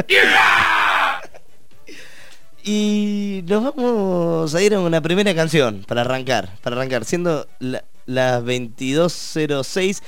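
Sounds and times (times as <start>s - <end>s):
speech: 0.0s - 0.7s, 2.6s - 10.0s
person screaming: 0.0s - 1.3s.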